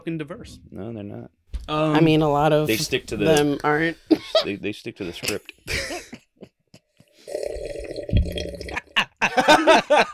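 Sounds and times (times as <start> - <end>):
speech: 0.0 - 6.0, 9.5 - 10.1
people laughing: 4.1 - 7.2, 8.8 - 10.1
person slurping juice from a jar of hot dogs: 7.2 - 9.0.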